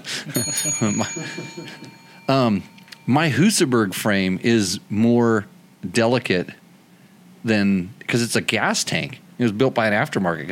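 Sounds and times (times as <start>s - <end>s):
speech: 0.2s - 6.6s, 7.4s - 10.5s
bright high bell ringing: 0.3s - 5.0s.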